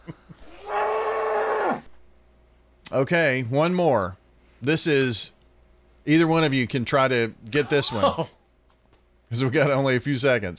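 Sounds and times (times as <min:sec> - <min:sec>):
cow mooing: 0:00.5 - 0:01.9
speech: 0:02.9 - 0:05.4, 0:06.0 - 0:08.4, 0:09.3 - 0:10.5.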